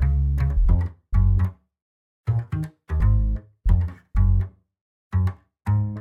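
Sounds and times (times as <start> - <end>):
game music bass: 0.0 - 1.5, 2.3 - 4.5.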